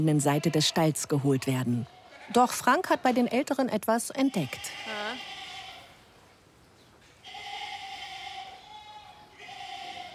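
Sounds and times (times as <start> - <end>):
speech: 0.0 - 5.2
excited lambs bleating in a barn: 1.8 - 2.6, 4.1 - 6.0, 7.2 - 10.1.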